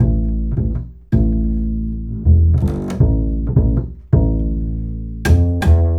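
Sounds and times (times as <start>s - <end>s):
acoustic bass: 0.0s - 5.9s.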